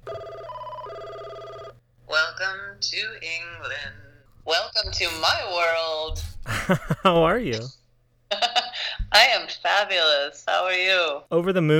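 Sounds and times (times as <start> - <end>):
telephone ringing with a loud electronic tone: 0.0 - 6.1
speech: 2.8 - 7.8, 9.2 - 11.7
laughter: 6.1 - 7.7, 8.3 - 9.0.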